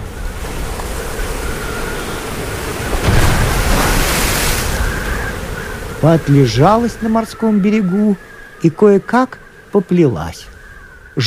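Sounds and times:
sea waves crashing against rock during a strong storm: 0:00.0 - 0:08.6
speech: 0:06.0 - 0:10.5.

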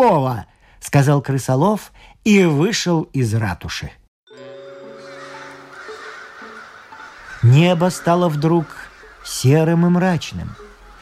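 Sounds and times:
speech: 0:00.0 - 0:04.5, 0:07.4 - 0:10.7
flock of crows cawing harshly: 0:04.7 - 0:11.0.

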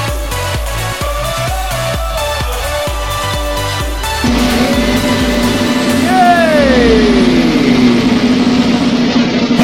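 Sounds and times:
electronic dance track with four-on-the-floor beat and bright synth chords: 0:00.1 - 0:09.2
sustained rising synth swell: 0:04.2 - 0:09.5.

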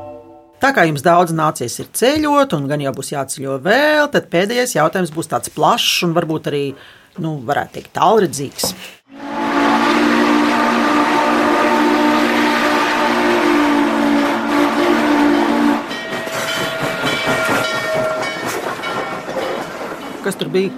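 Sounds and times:
speech: 0:00.7 - 0:09.0, 0:20.5 - 0:20.7
loud train whistle-like tone: 0:09.1 - 0:18.5
train wheels rumbling: 0:09.3 - 0:20.7
train carriages rattling and clattering: 0:15.9 - 0:20.7.

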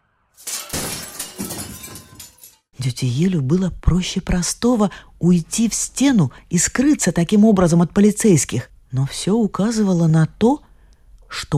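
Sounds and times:
glass fragments tinkling: 0:00.4 - 0:02.6
glass display cases shattering: 0:00.4 - 0:02.7
speech: 0:02.8 - 0:10.7, 0:11.3 - 0:11.5.

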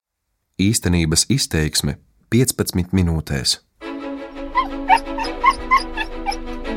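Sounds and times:
speech: 0:00.6 - 0:03.7
agitated dog whining and yelping in a car crate: 0:04.6 - 0:06.6.

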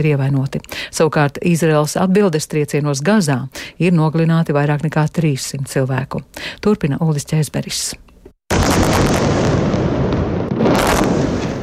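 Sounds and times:
speech: 0:00.0 - 0:08.1
airstrike explosion: 0:08.5 - 0:11.6.

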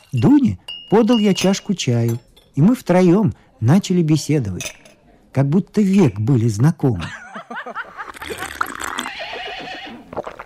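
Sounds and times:
speech: 0:00.1 - 0:07.2
laughter: 0:07.0 - 0:09.6
horse neighing: 0:08.6 - 0:10.2.

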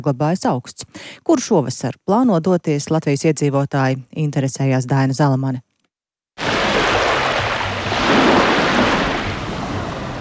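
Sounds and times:
speech: 0:00.0 - 0:05.7
sea surf breaking on the shore: 0:06.4 - 0:10.1.

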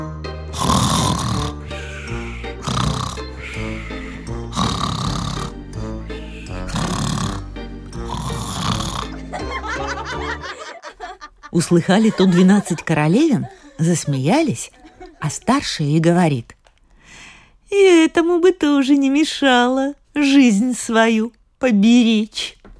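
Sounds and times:
man snoring loudly in bed, voiced as an imitation: 0:00.5 - 0:09.3
laughter: 0:09.1 - 0:15.5
speech: 0:11.6 - 0:16.6, 0:17.7 - 0:22.6.

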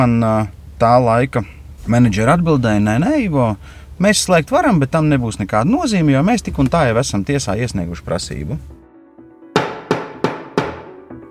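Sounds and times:
speech: 0:00.0 - 0:08.8
auction gavel knocking: 0:09.6 - 0:11.1.

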